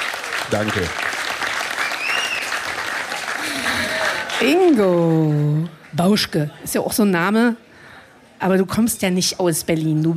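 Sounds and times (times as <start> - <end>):
audience applause: 0.0 - 5.3
speech: 0.5 - 1.1, 4.4 - 7.6, 8.4 - 10.1
faint whistles or cheers: 1.8 - 2.6.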